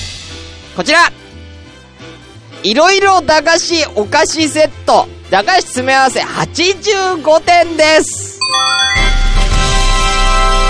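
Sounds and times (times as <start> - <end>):
steady musical backing: 0.3 - 10.6
speech: 0.8 - 1.2, 2.0 - 9.0
bright electronic ping-pong chime: 8.4 - 9.9.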